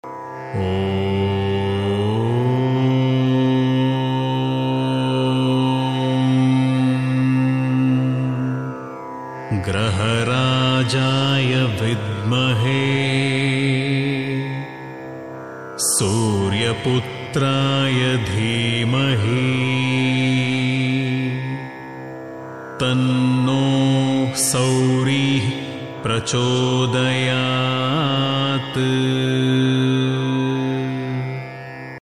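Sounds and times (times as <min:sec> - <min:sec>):
male voice chanting: 0:00.5 - 0:15.0, 0:15.8 - 0:21.9, 0:22.8 - 0:32.0.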